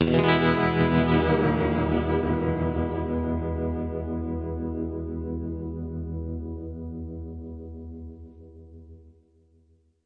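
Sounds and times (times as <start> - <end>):
guitar tremolo chord: 0.0 - 6.3.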